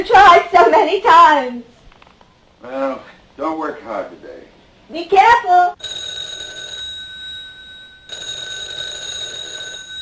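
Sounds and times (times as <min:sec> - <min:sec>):
speech: 0:00.0 - 0:01.8, 0:02.6 - 0:06.0
telephone bell ringing: 0:05.8 - 0:10.0.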